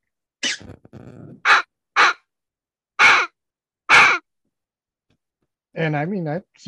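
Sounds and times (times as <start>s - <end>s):
fox hammer predator call imitating fox barking screams: 1.3s - 2.3s, 3.0s - 4.2s
speech: 5.8s - 6.6s.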